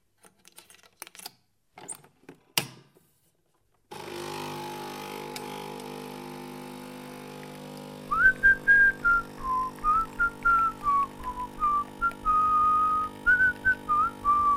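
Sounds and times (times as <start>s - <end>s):
person whistling a wandering tune: 8.1s - 14.5s.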